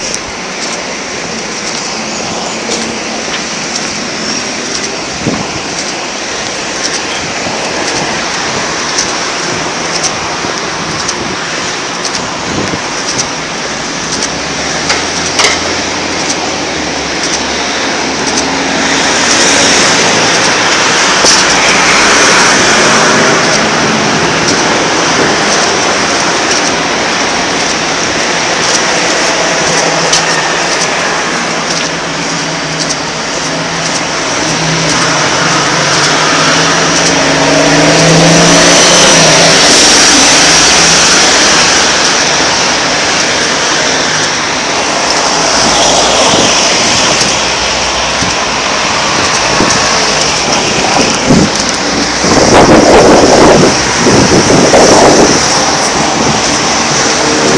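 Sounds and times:
city soundscape in Nottingham: 0:00.0 - 0:57.5.

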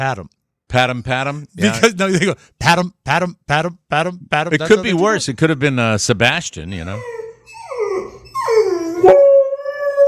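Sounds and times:
speech: 0:00.0 - 0:07.2
dog yelping: 0:06.9 - 0:10.0
dog howling: 0:07.6 - 0:10.0.

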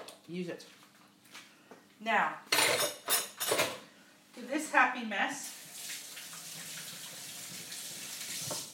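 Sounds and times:
speech: 0:00.3 - 0:00.8, 0:02.0 - 0:02.9, 0:04.4 - 0:05.5
tap water running in a kitchen: 0:05.4 - 0:08.7.

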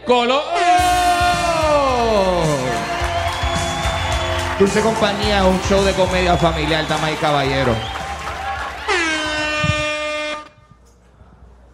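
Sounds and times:
speech: 0:00.1 - 0:00.9, 0:04.6 - 0:08.0
lively audience cheering and whooping: 0:00.5 - 0:10.0
audience applause: 0:00.8 - 0:09.8.

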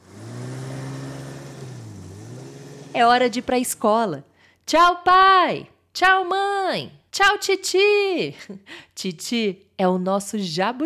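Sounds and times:
boat motor engine droning: 0:00.0 - 0:03.9
speech: 0:02.9 - 0:10.8.

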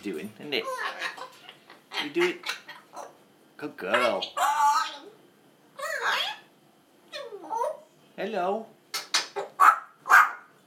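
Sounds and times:
speech: 0:00.0 - 0:01.1, 0:02.1 - 0:02.6, 0:03.6 - 0:04.6, 0:08.2 - 0:08.8
dog barking: 0:09.6 - 0:10.5.

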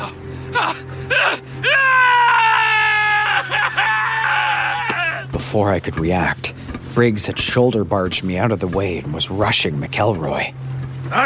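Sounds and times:
faint steady hum: 0:00.0 - 0:11.2
man screaming in terror: 0:00.5 - 0:05.3
speech: 0:05.5 - 0:11.2.

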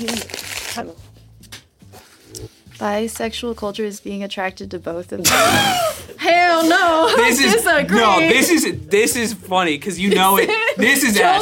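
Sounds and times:
paper being crumpled: 0:00.0 - 0:01.0
speech: 0:00.0 - 0:01.0, 0:02.8 - 0:11.4
laughter: 0:05.2 - 0:11.4.

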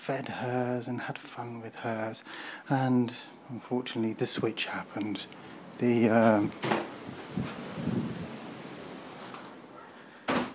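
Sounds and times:
speech: 0:00.1 - 0:08.0
door blown open by the wind creaking: 0:06.5 - 0:09.6
door thump: 0:06.6 - 0:07.0, 0:10.3 - 0:10.5
wind rushing: 0:06.9 - 0:09.3.

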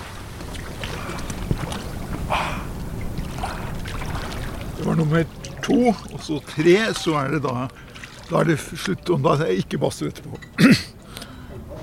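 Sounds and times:
man plunging into ice-cold water: 0:00.0 - 0:04.8
faint water sloshing: 0:00.0 - 0:11.1
steady wind: 0:00.0 - 0:11.8
speech: 0:05.0 - 0:11.0.

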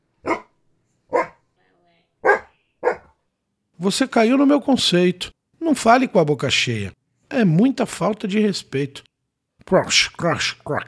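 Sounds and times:
dog barking: 0:00.2 - 0:01.4, 0:02.2 - 0:03.2
speech: 0:03.8 - 0:09.1, 0:09.7 - 0:10.8.

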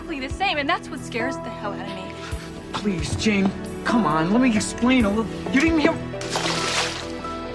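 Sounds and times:
speech: 0:00.1 - 0:06.5
cane thrown into a swimming pool: 0:06.2 - 0:07.3.

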